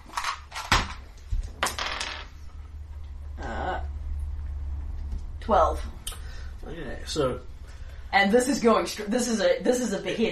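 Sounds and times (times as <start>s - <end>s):
small hard dice clattering: 0.2s - 2.4s
steady low hum: 1.2s - 8.4s
speech: 5.5s - 6.0s, 6.7s - 7.5s, 8.1s - 10.3s.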